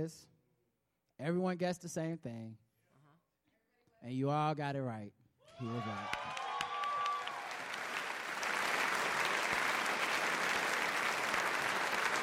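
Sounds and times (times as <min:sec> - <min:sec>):
speech: 0:00.0 - 0:00.3, 0:01.2 - 0:02.6, 0:04.0 - 0:06.4
audience clapping: 0:05.8 - 0:12.2.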